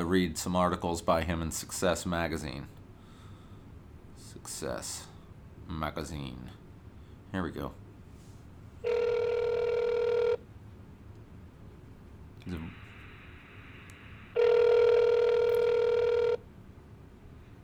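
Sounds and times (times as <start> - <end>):
speech: 0.1 - 2.8, 4.4 - 5.1, 5.7 - 6.6, 7.3 - 7.8, 8.8 - 9.0, 12.4 - 12.8
ringback tone of an outgoing call from an iPhone: 8.8 - 10.4, 14.3 - 16.4.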